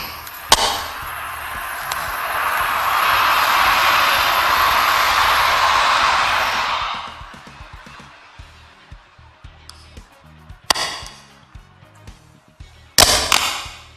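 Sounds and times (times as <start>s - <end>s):
train passing by: 0.0s - 10.5s.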